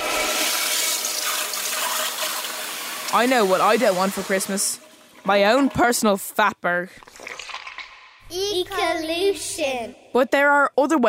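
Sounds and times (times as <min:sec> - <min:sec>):
toilet flushing with swirling water: 0:00.0 - 0:06.4
speech: 0:03.1 - 0:07.3, 0:08.3 - 0:11.0.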